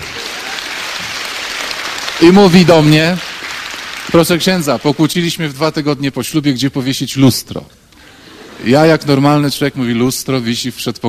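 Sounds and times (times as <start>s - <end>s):
large audience applauding: 0.0s - 5.4s
speech: 2.2s - 3.3s, 4.1s - 7.8s, 8.6s - 11.0s.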